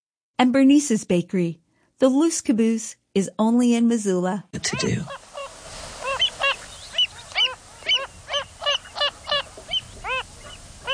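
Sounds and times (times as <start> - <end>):
speech: 0.4 - 5.2
faint hiss: 0.5 - 10.9
Wilson's phalarope calling: 4.7 - 10.9.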